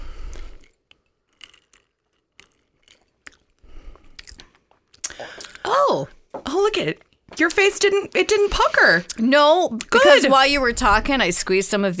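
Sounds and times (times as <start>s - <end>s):
person sipping a whiskey cocktail: 0.1s - 5.6s
swallowing: 0.3s - 5.6s
speech: 5.9s - 11.9s.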